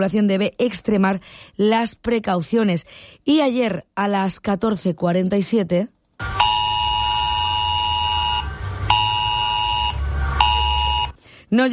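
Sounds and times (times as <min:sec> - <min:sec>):
speech: 0:00.0 - 0:06.4, 0:11.5 - 0:11.7
civil protection emergency alert on mobile phones: 0:06.2 - 0:11.2.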